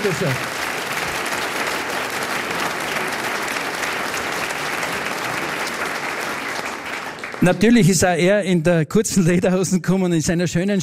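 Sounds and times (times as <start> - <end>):
speech: 0.0 - 0.6, 7.4 - 10.8
audience applause: 0.0 - 8.0.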